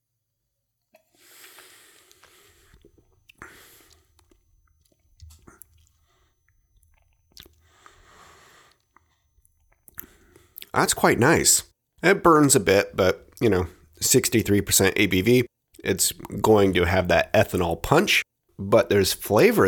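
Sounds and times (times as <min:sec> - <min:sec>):
someone sipping and swallowing 63% ABV agricultural rum: 0:00.9 - 0:08.1, 0:08.7 - 0:10.7, 0:15.7 - 0:16.7
speech: 0:10.8 - 0:19.6.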